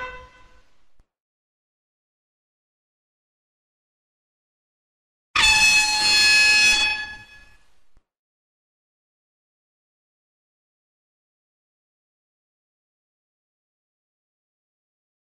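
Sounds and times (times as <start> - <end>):
sports whistles blowing: 5.4 - 7.6.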